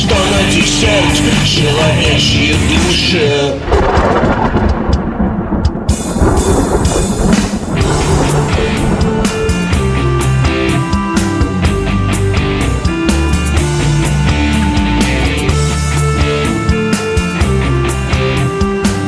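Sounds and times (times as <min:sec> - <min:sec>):
speech: 0:00.7 - 0:04.7
loud rolling thunder: 0:03.2 - 0:11.6
steady hiss of rain: 0:03.4 - 0:11.1
music with sustained tones and sharp percussive hits: 0:03.8 - 0:19.0.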